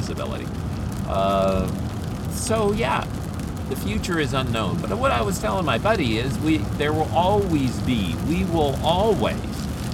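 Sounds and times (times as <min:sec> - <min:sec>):
steady rain hissing: 0:00.0 - 0:09.9
speech: 0:00.1 - 0:09.7.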